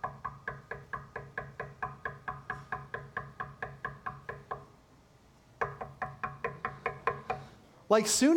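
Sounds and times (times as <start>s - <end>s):
rapid knocking on a door: 0.0s - 4.7s, 5.6s - 7.4s
speech: 7.9s - 8.3s.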